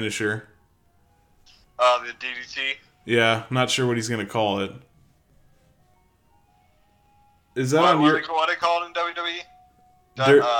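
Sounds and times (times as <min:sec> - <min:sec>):
speech: 0:00.0 - 0:00.5, 0:01.8 - 0:04.9, 0:07.6 - 0:09.5, 0:10.2 - 0:10.5
ice cream truck jingle with tinkly electronic melody: 0:00.0 - 0:10.5.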